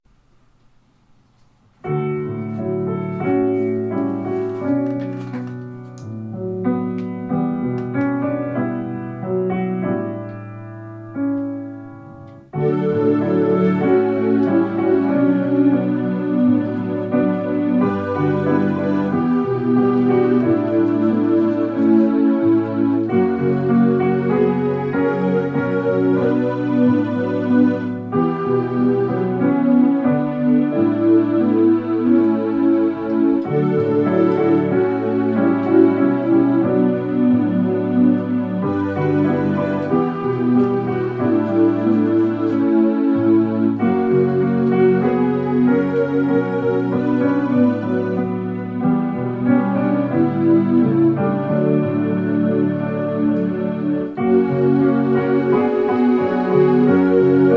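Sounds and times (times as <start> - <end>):
piano accompaniment: 0.0 - 57.5
SAB midi choir voices: 12.6 - 57.5.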